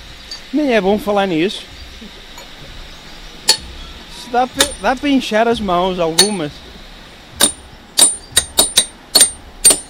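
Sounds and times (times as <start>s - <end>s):
speech: 0.5s - 2.2s, 4.3s - 6.6s
hammer splitting schist rock in Arouca: 3.5s - 3.7s, 4.6s - 4.9s, 6.2s - 6.4s, 7.4s - 9.8s.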